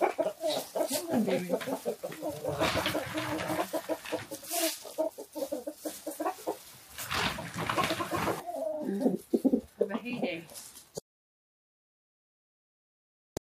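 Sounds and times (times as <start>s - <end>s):
several chickens clucking: 0.0s - 10.7s
speech: 0.5s - 3.8s.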